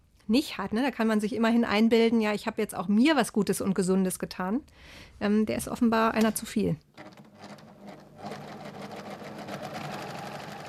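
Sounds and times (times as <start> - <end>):
speech: 0.3 - 7.2
sewing machine rattling while stitching fabric: 7.0 - 10.6.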